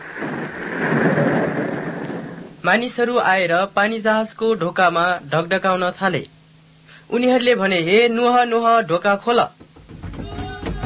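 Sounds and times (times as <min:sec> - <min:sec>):
heavy rain: 0:00.0 - 0:02.6
thunder rumbling: 0:00.0 - 0:02.8
speech: 0:02.6 - 0:06.4, 0:07.1 - 0:09.6.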